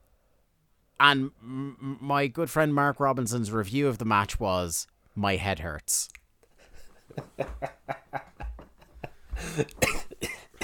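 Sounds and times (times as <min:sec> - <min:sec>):
speech: 0:01.0 - 0:06.2, 0:07.1 - 0:08.2, 0:09.4 - 0:10.0
loud fit of harsh coughing: 0:09.4 - 0:10.6.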